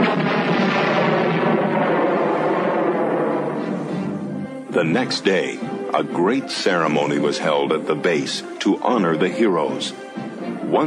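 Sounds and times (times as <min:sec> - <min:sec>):
space station exploding in a huge fireball: 0:00.0 - 0:05.1
speech: 0:04.8 - 0:10.8.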